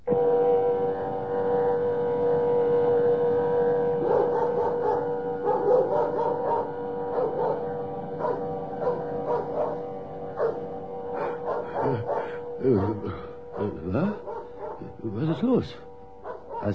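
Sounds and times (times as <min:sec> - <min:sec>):
steady droning siren-like tone: 0:00.0 - 0:16.7
dog barking: 0:04.0 - 0:15.6, 0:16.2 - 0:16.7
speech: 0:15.6 - 0:15.9.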